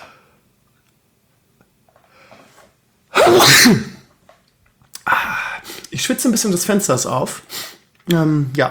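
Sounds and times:
person sneezing: 3.1 - 4.1
speech: 3.3 - 3.9, 6.2 - 8.6.

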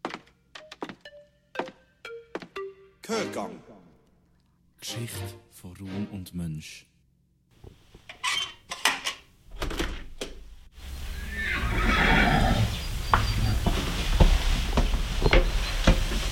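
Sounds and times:
speech: 3.1 - 3.7, 4.8 - 6.9
hungry horses whinnying from stalls in a stable in Köniz: 10.9 - 16.2.

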